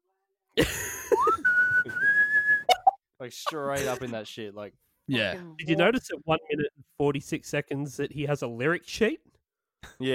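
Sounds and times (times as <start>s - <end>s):
whistling into a microphone during a song: 1.2s - 3.0s
speech: 3.2s - 9.3s.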